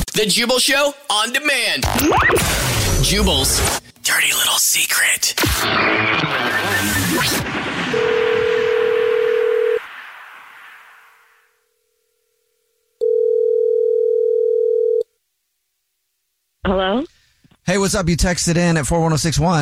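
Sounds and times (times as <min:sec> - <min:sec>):
speech: 0:00.2 - 0:07.7, 0:17.7 - 0:19.6
noisy opening burst: 0:01.8 - 0:04.6, 0:05.2 - 0:11.5
telephone tone as a call is placed: 0:07.9 - 0:09.8, 0:13.0 - 0:15.1.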